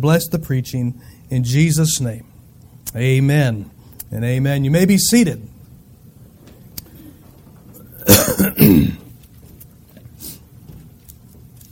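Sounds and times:
speech: 0.0 - 5.6, 8.4 - 9.0
person clearing their throat: 7.8 - 9.1
person coughing: 7.9 - 9.1.

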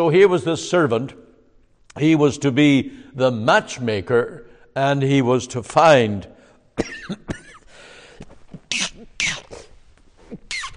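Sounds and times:
speech: 0.0 - 1.2, 2.0 - 7.4
person coughing: 6.8 - 7.7, 8.6 - 9.7.

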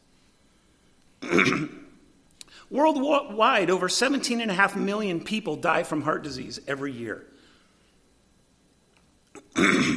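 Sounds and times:
throat clearing: 1.2 - 1.9, 9.4 - 9.9
speech: 1.3 - 1.8, 2.7 - 7.3.

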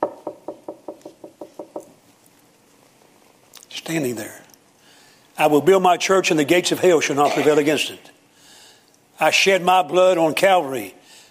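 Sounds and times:
knocking on a wooden door: 0.0 - 1.9
speech: 3.8 - 4.4, 5.4 - 8.1, 9.2 - 11.0.

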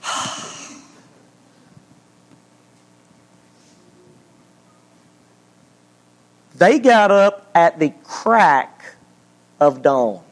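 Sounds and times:
single sharp breath: 0.0 - 0.8
speech: 6.6 - 8.7, 9.6 - 10.2.

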